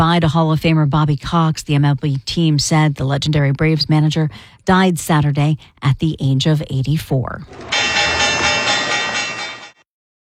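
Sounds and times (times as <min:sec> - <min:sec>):
speech: 0:00.0 - 0:07.8
stock market opening electric bell ringing: 0:07.4 - 0:09.8.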